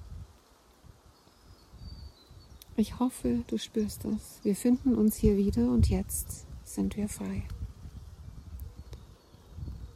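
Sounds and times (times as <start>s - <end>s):
wind rustling through treetops: 0.0s - 9.9s
speech: 2.8s - 7.6s.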